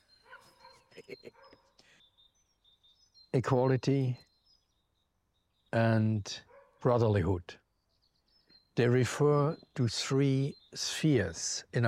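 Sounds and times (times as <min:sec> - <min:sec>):
dog barking: 0:00.2 - 0:01.6, 0:06.5 - 0:06.8
speech: 0:01.0 - 0:01.7, 0:03.3 - 0:04.3, 0:05.7 - 0:07.6, 0:08.8 - 0:11.8.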